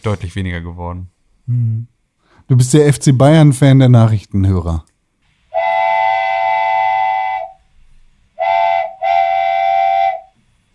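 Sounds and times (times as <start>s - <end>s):
speech: 0.0s - 4.9s
loud shrill steam-whistle-like whistle blasts: 5.5s - 7.7s, 8.4s - 10.4s.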